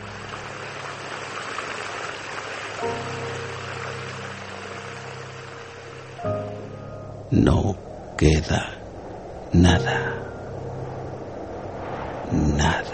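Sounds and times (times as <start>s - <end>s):
distant rushing river water roaring: 0.0s - 12.9s
low mechanical drone: 0.0s - 12.9s
speech: 7.3s - 8.8s, 9.5s - 10.3s.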